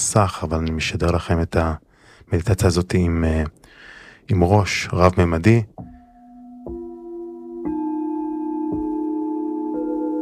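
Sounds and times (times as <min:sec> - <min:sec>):
speech: 0:00.0 - 0:05.9
Tibetan singing bowls ringing: 0:05.8 - 0:10.2.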